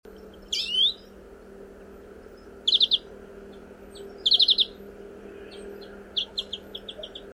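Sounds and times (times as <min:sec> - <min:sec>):
steady background hum: 0:00.0 - 0:07.3
European greenfinch calls: 0:00.2 - 0:01.2, 0:02.3 - 0:04.8, 0:05.4 - 0:07.3.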